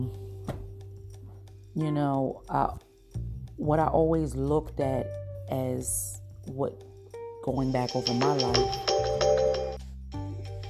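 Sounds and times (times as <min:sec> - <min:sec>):
speech: 0:01.8 - 0:02.8, 0:03.6 - 0:09.4
bright melodic electronic phone ringtone: 0:07.9 - 0:09.8.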